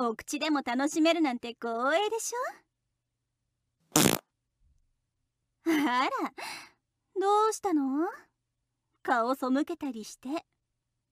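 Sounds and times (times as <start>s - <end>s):
speech: 0.0s - 2.7s, 3.9s - 4.2s, 5.6s - 8.3s, 9.0s - 10.5s
woman farting: 3.9s - 4.2s.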